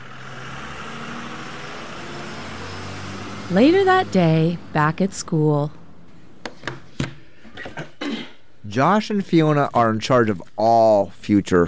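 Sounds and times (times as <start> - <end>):
bus engine idling: 0.0 - 6.0
broad wash of road noise: 0.0 - 7.0
speech: 3.5 - 5.8, 8.7 - 11.6.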